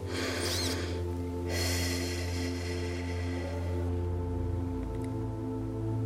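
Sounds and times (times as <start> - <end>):
deep airy inhaling breaths: 0.0 - 3.9
soft steady musical drone: 0.0 - 6.0.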